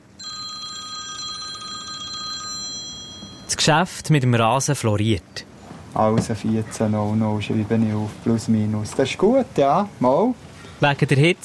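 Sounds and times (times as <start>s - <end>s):
telephone ringing with a trilling electronic bell: 0.0s - 3.8s
speech: 3.5s - 11.4s.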